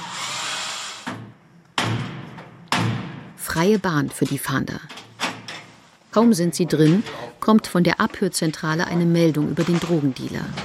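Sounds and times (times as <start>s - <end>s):
grinding drill-like noise of apartment door being forced open: 0.0s - 1.2s
heavy thuds and bangs of apartment door being forced open: 1.1s - 3.4s
speech: 3.6s - 5.0s, 6.2s - 10.6s.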